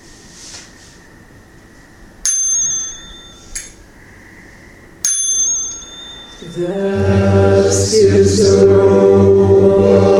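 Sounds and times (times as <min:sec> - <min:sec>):
ceremonial bell struck, ringing clear and bright: 0:02.3 - 0:03.8, 0:05.0 - 0:07.0
speech: 0:06.4 - 0:10.0.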